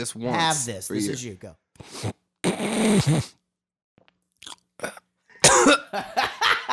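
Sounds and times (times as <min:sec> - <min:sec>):
speech: 0:00.0 - 0:02.2, 0:02.8 - 0:03.4, 0:05.9 - 0:06.2
wet snort drawn through the nose: 0:01.8 - 0:03.4
laughter: 0:05.8 - 0:06.7.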